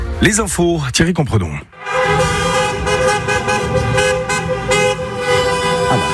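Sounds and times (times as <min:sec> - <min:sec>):
speech: 0:00.2 - 0:01.7
street traffic: 0:01.4 - 0:06.1
many car horns honking in street celebration: 0:01.7 - 0:06.1.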